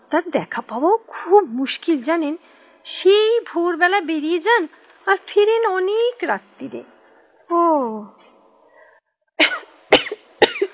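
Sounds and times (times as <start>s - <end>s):
speech: 0.1s - 8.2s
person with a mild fever giving dry tickly coughs: 9.4s - 10.7s.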